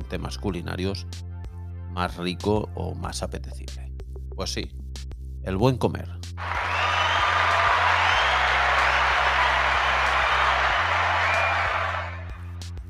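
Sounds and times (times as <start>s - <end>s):
speech: 0.1s - 1.3s, 2.0s - 4.8s, 5.4s - 6.7s
faint cheering: 6.4s - 12.5s
crowd applauding: 6.4s - 12.6s.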